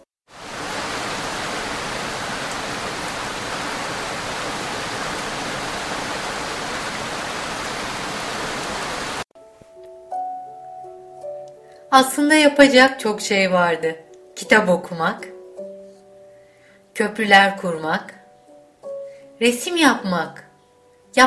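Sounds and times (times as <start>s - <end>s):
steady dense rain in a forest: 0.3s - 9.2s
soft gentle melody: 9.4s - 21.2s
speech: 11.9s - 15.3s, 17.0s - 18.2s, 19.4s - 20.4s.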